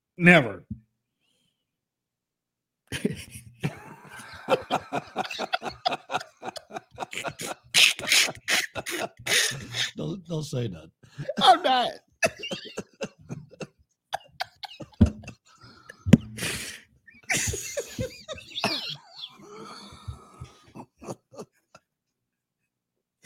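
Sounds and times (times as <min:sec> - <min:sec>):
speech: 0:00.2 - 0:00.8, 0:04.5 - 0:13.1
laughter: 0:02.9 - 0:10.1, 0:11.0 - 0:21.8
man coughing: 0:03.7 - 0:10.0, 0:11.2 - 0:15.4, 0:17.3 - 0:19.7.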